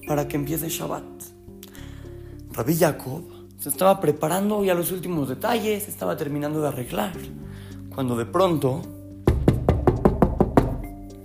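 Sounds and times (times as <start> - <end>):
speech: 0.1 - 1.3, 2.6 - 9.0
knocking on a house door: 9.3 - 11.0.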